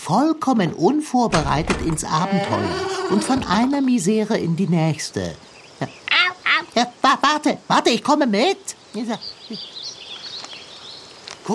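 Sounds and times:
speech: 0.1 - 6.0, 6.8 - 9.8
small birds chirping and twittering: 0.7 - 11.5
brief human vocal sound: 1.3 - 3.8.

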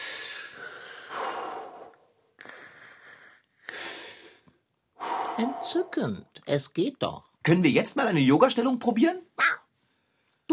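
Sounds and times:
slow deep breathing close to the microphone: 0.0 - 6.2
speech: 5.4 - 9.3.

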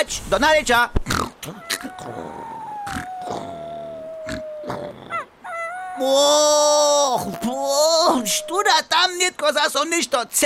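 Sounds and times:
speech: 0.0 - 2.3, 6.0 - 10.4
wet lonely puppy under a tree whimpering: 1.5 - 6.4, 7.0 - 8.6.

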